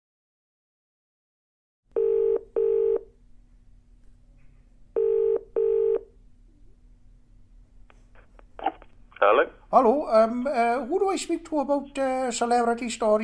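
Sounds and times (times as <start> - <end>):
faint low hum: 1.9 - 13.2
telephone keypad dialing tones: 5.0 - 6.1
speech: 9.2 - 13.2.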